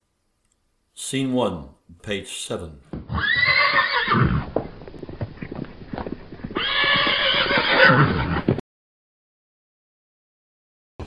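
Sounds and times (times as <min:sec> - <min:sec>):
speech: 0:01.1 - 0:03.4
horse hooves clip-clopping: 0:02.9 - 0:08.6
spooked horses whinnying: 0:03.0 - 0:08.6.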